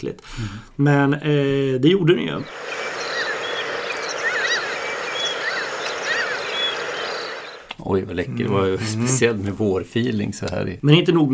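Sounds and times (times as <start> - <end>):
speech: 0.0 - 2.8, 7.8 - 11.3
steady outdoor hiss: 2.0 - 7.9
Mediterranean gulls calling in flight: 2.4 - 7.7.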